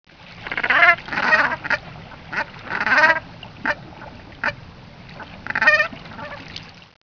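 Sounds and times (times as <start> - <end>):
Branta bernicla calling: 0.4 - 4.6, 5.2 - 6.5.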